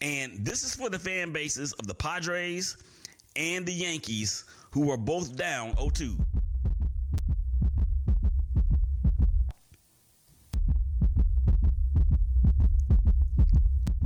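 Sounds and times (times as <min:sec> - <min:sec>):
speech: 0:00.0 - 0:06.4
fast heartbeat thumping with deep booming pulses: 0:05.7 - 0:09.6, 0:10.6 - 0:14.0.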